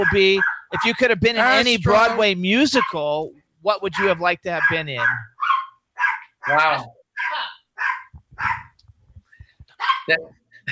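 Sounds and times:
speech: 0.0s - 5.3s, 6.4s - 7.4s, 10.1s - 10.6s
small poodle-terrier mix dog barking: 4.6s - 8.8s, 9.8s - 10.2s.

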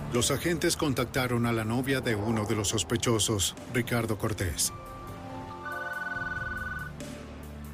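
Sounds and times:
speech: 0.1s - 4.9s
telephone ringing with a warbling electronic tone: 5.5s - 6.9s.

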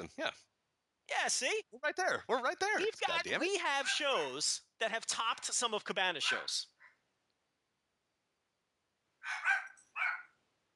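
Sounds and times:
speech: 0.0s - 0.5s, 1.1s - 6.7s
dog barks from upstairs: 3.8s - 4.1s, 6.2s - 6.6s, 9.2s - 10.3s.

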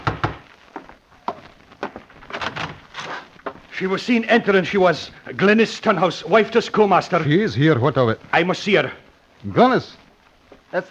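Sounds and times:
knocking on a wooden door: 0.0s - 0.4s
speech: 3.8s - 10.0s.

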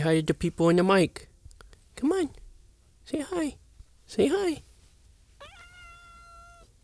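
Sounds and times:
speech: 0.0s - 1.3s, 2.0s - 2.4s, 3.1s - 4.7s
cat meowing angrily: 5.4s - 6.7s.

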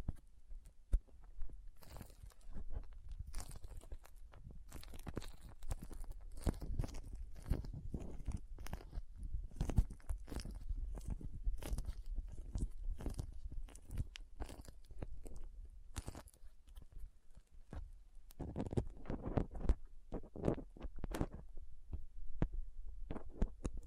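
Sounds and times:
sticky crinkling: 0.0s - 21.4s
crackle and crunch: 0.0s - 23.8s
soft squishing: 0.0s - 23.8s.

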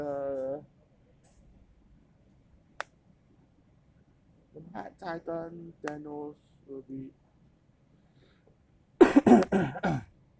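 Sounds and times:
speech: 5.0s - 7.2s, 9.3s - 10.1s
person clearing throat: 9.0s - 10.1s.

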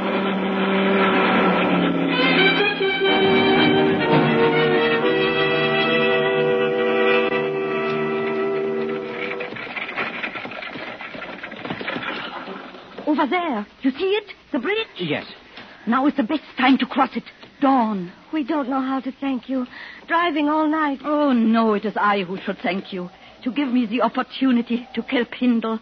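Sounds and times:
patrol car engine droning as it approaches: 0.0s - 10.0s
speech: 13.6s - 25.8s.

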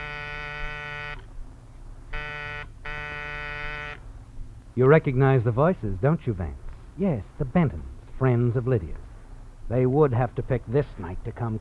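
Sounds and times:
harsh electric door buzzer ringing: 0.0s - 1.3s, 2.1s - 4.0s
faint low hum: 0.0s - 11.5s
speech: 4.8s - 9.0s, 9.7s - 11.5s.

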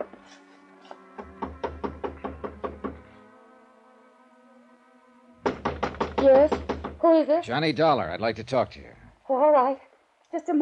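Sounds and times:
knocking on an apartment door: 1.2s - 3.1s, 5.4s - 7.1s
speech: 6.2s - 10.6s.

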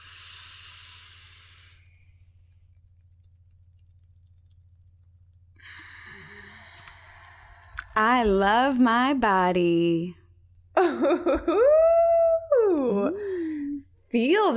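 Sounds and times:
deep breathing during a guided meditation: 0.0s - 2.4s, 5.6s - 8.0s, 13.2s - 13.8s
steady low hum: 0.0s - 14.5s
speech: 8.0s - 10.2s, 10.8s - 11.9s, 14.1s - 14.5s.

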